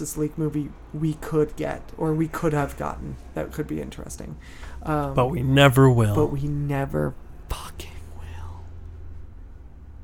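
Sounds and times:
speech: 0.0s - 7.9s
low steady hum: 0.0s - 10.0s
person whispering into a microphone: 7.5s - 8.7s.

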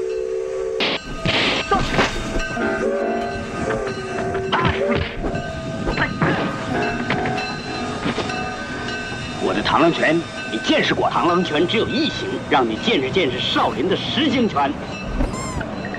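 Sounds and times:
long horn-like tones: 0.0s - 7.4s
train rolling on rails: 0.0s - 15.9s.

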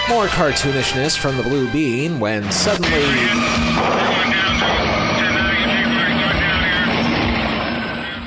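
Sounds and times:
speech: 0.1s - 5.0s
smoking helicopter going down in flames with engine whine and rotor thrum: 2.9s - 8.2s.

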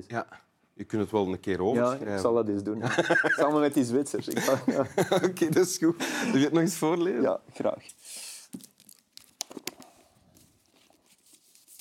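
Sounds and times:
speech: 0.0s - 8.7s
laughter: 2.8s - 6.6s
sheet of paper being turned: 8.5s - 11.7s.

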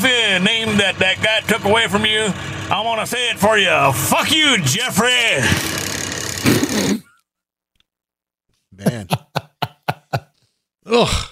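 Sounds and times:
speech: 0.0s - 5.9s, 10.9s - 11.2s
tractor engine running: 0.0s - 6.8s
laughter: 8.8s - 10.4s.

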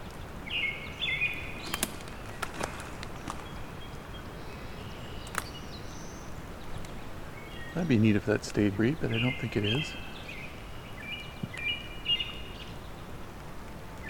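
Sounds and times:
black-throated blue warbler song: 0.0s - 14.0s
crunchy footsteps: 1.6s - 3.6s
speech: 7.8s - 10.2s.

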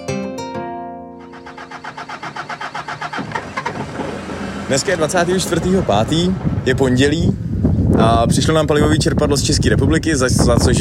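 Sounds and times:
three-tonne expedition off-road truck engine running roughly: 1.2s - 7.6s
speech: 4.7s - 7.4s, 8.0s - 10.7s.

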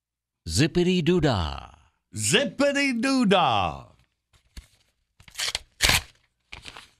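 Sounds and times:
speech: 0.5s - 3.9s
paper envelope being torn open: 5.2s - 6.9s.

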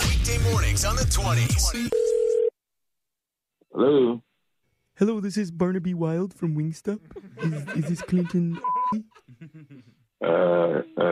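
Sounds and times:
speech: 0.8s - 2.0s, 3.8s - 4.3s, 5.0s - 11.1s
steady telephone line tone: 1.9s - 2.5s
laughter: 7.1s - 10.0s.

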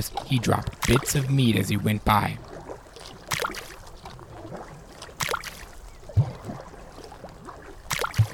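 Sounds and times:
speech: 0.0s - 2.5s
paddle strokes of a small boat in water: 0.0s - 8.3s.

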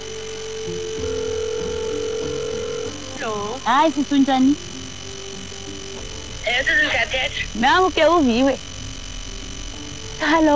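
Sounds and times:
telephone ringing on an outgoing call: 0.0s - 3.6s
speech: 0.7s - 0.9s, 3.2s - 4.7s, 6.5s - 8.7s, 10.2s - 10.5s.

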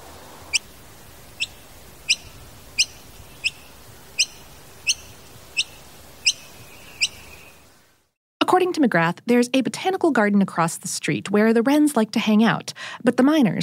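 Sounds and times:
faint hiss: 0.0s - 8.2s
noisy miner bird calls: 1.4s - 7.6s
speech: 8.6s - 13.6s.

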